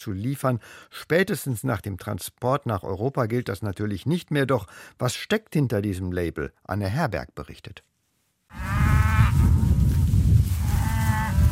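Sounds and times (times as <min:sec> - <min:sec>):
speech: 0:00.0 - 0:07.9
Black Angus cattle mooing on pasture: 0:08.5 - 0:09.8, 0:10.6 - 0:11.5.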